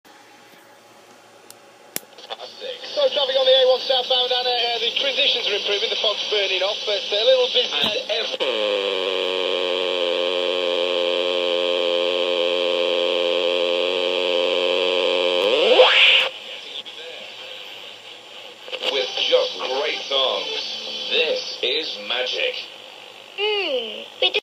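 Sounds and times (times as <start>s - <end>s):
radio interference: 2.1s - 24.4s.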